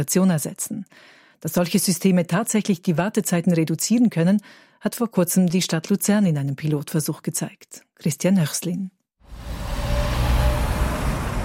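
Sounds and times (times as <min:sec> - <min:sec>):
speech: 0:00.0 - 0:09.6
cars, trucks and buses on a busy street in the east of Lucerne: 0:09.2 - 0:11.4.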